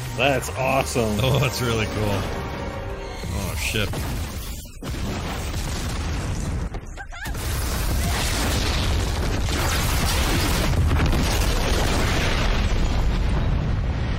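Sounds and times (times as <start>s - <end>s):
speech: 0.2s - 2.4s, 3.5s - 4.3s
large robot exploding: 3.8s - 6.7s, 7.3s - 14.1s.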